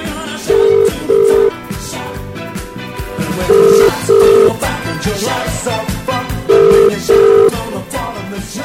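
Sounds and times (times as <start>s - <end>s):
busy music bed: 0.0s - 8.6s
telephone ringing: 0.5s - 1.5s, 3.4s - 4.7s, 6.5s - 7.6s.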